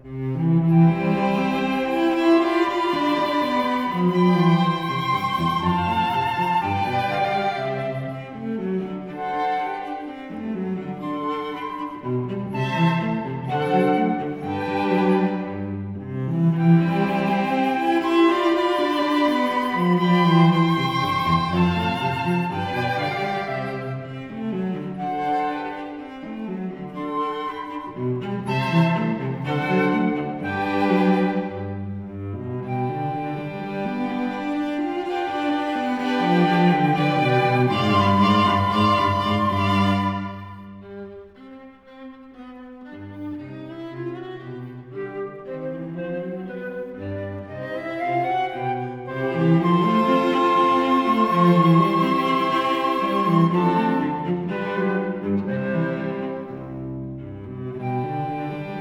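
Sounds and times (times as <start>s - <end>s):
flute quartet playing a variation: 0.0s - 41.1s, 43.4s - 58.7s.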